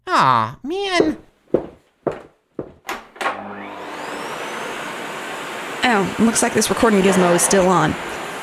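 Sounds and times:
speech: 0.1 - 1.2, 6.0 - 8.2
heavy clunks of the vacuum cleaner being set down and handled: 1.0 - 3.1
vacuum cleaner running loudly: 3.2 - 8.4.

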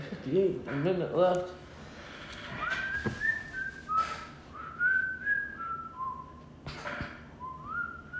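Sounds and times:
speech: 0.1 - 1.6
whistled melody from a song: 2.6 - 6.3, 7.4 - 8.1.

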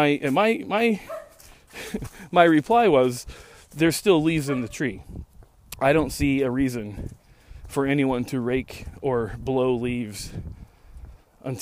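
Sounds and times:
speech: 0.0 - 10.6
dog barking with drawn-out tonal yowls: 1.1 - 1.4, 4.5 - 4.8.

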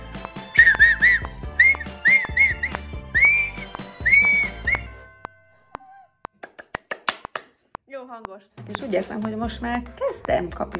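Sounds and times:
clicks and taps: 0.2 - 2.9, 5.2 - 10.7
person learning to whistle whistling a wavering melody: 0.5 - 5.1
speech: 8.2 - 10.7.

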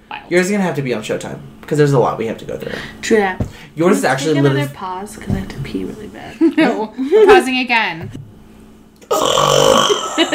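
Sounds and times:
speech: 0.3 - 8.2, 10.2 - 10.3
loud drawn-out burp: 9.0 - 10.3.

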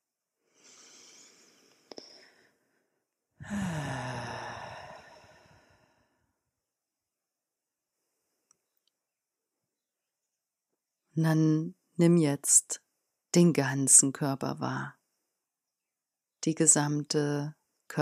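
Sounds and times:
slow calm breath in and out: 0.4 - 6.4
speech: 11.2 - 15.0, 16.4 - 18.0.

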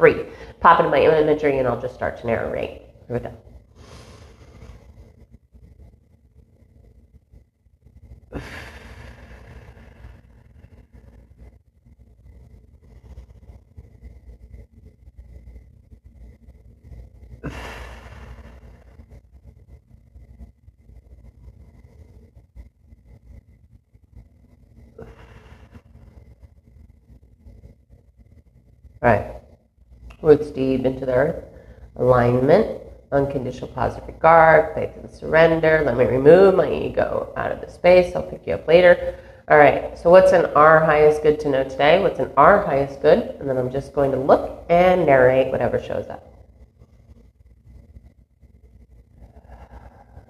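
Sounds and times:
speech: 0.0 - 3.5, 8.3 - 8.7, 29.0 - 29.3, 30.2 - 46.3
steady low hum: 0.0 - 50.2
slow deep breaths: 3.5 - 5.6, 7.9 - 14.6, 16.5 - 19.8, 24.1 - 27.8, 31.4 - 32.0, 39.0 - 39.5, 49.0 - 50.2.

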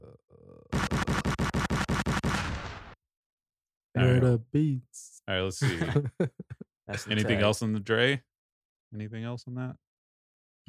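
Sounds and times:
gunshot sound effect as rapid blasts: 0.8 - 3.0
speech: 4.0 - 8.3, 8.9 - 9.8
laughter: 5.6 - 7.6.

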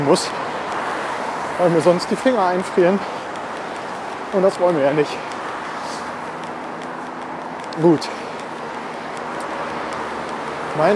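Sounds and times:
heavy road traffic with many passing cars: 0.0 - 10.9
speech: 0.1 - 0.5, 1.6 - 3.2, 4.3 - 5.3, 7.8 - 8.2, 10.8 - 10.9.

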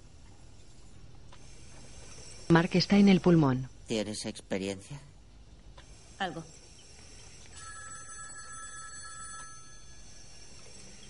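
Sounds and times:
hiss: 0.0 - 11.0
speech: 2.5 - 5.1, 6.2 - 6.6
telephone ringing indoors: 7.5 - 11.0.

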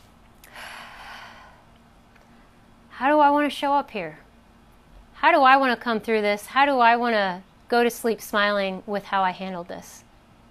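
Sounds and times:
person taking a breath: 0.4 - 1.7
speech: 3.0 - 4.2, 5.2 - 10.0.

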